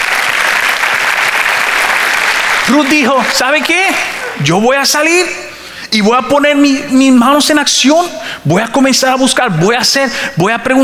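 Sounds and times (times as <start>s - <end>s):
congregation applauding during a church sermon: 0.0s - 4.5s
speech: 2.7s - 10.8s.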